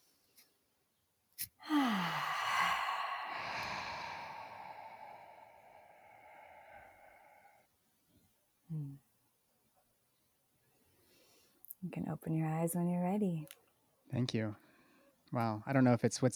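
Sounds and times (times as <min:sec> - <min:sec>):
deep guided-relaxation breath in through the nose and out through the mouth: 0:01.6 - 0:07.7
speech: 0:11.9 - 0:14.6, 0:15.3 - 0:16.3.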